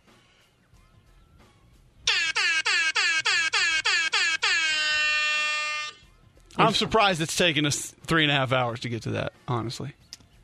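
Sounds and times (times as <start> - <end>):
dancehall-style air horn blasts: 2.1 - 6.1
speech: 6.6 - 10.0.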